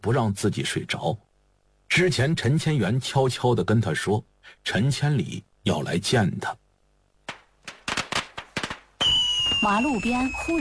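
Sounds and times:
speech: 0.0 - 1.3, 2.0 - 6.6, 9.6 - 10.5
firecrackers and skyrocket crackers popping at a roadside: 7.2 - 10.5.

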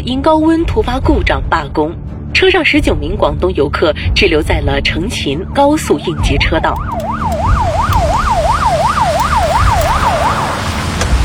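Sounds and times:
speech: 0.0 - 7.4
road and engine noise on an expressway in summer heat: 4.8 - 11.2
traffic police car siren wailing on an expressway in Hebei: 5.9 - 11.0.

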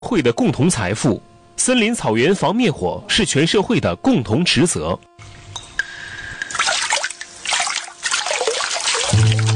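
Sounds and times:
speech: 0.1 - 5.3
low musical hum: 0.1 - 9.5
water running and dripping from a tap: 6.4 - 9.5.

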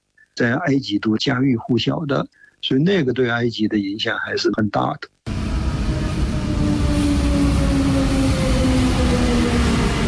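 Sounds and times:
speech: 0.4 - 5.1
electric suburban commuter train wheels rumbling on track in eastern Cairo, Egypt: 5.3 - 10.0.

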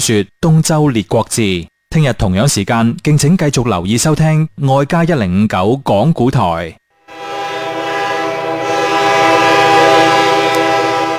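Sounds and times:
speech: 0.0 - 7.4
train horn blaring: 7.0 - 11.1.

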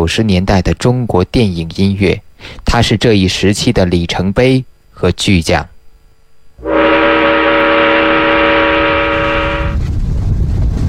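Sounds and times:
speech: 0.0 - 5.7
train horn blasting: 6.6 - 9.9
northbound train running on rails toward the Loess Plateau in China: 6.6 - 10.8.

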